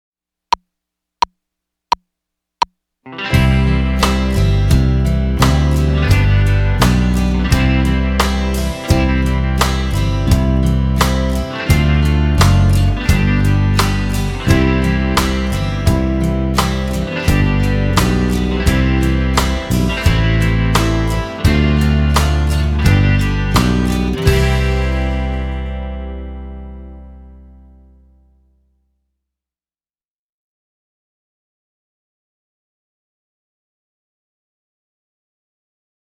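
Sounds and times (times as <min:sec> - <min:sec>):
major scale melody: 0:03.4 - 0:27.6.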